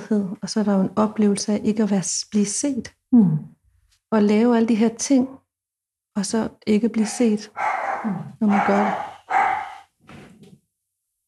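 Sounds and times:
speech: 0:00.1 - 0:05.4, 0:06.2 - 0:09.4
dog barking: 0:07.0 - 0:09.9.

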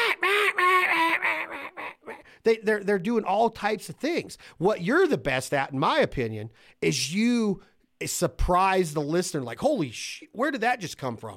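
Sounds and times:
duck call imitating mallard hen quacks: 0:00.0 - 0:02.2
speech: 0:02.4 - 0:11.3.

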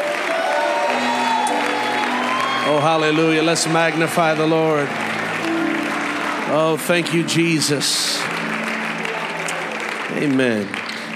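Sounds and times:
audience applause: 0:00.0 - 0:11.1
speech: 0:02.7 - 0:05.1, 0:06.5 - 0:08.3, 0:10.2 - 0:10.8.

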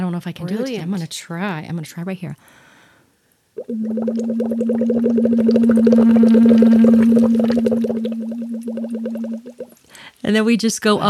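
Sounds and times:
speech: 0:00.2 - 0:02.7, 0:03.7 - 0:09.0, 0:09.9 - 0:11.0
hummed tone while blowing bubbles through water: 0:03.6 - 0:09.8.

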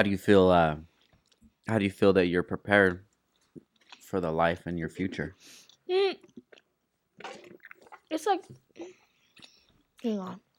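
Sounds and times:
speech: 0:00.0 - 0:00.9, 0:01.7 - 0:03.1, 0:04.1 - 0:06.4, 0:08.1 - 0:09.0, 0:10.0 - 0:10.5
person chewing food: 0:00.9 - 0:01.6, 0:03.1 - 0:04.3, 0:04.9 - 0:08.1, 0:08.7 - 0:10.5.

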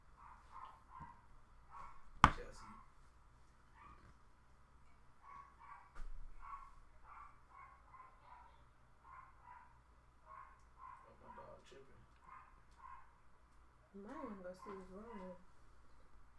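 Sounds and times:
low hum: 0:00.0 - 0:16.3
dog barking sharply: 0:00.2 - 0:03.0, 0:03.8 - 0:04.1, 0:05.2 - 0:11.6, 0:12.2 - 0:13.2.

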